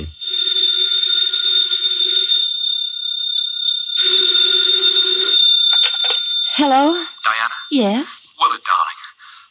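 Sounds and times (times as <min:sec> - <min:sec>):
speech: 0:00.0 - 0:00.2, 0:06.6 - 0:08.5
old-fashioned telephone bell ringing with a bright metallic jangle: 0:00.1 - 0:09.0.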